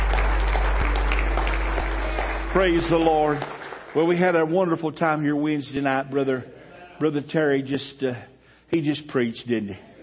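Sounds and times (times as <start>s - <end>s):
audience clapping in praise: 0.0s - 5.1s
speech: 2.5s - 9.9s.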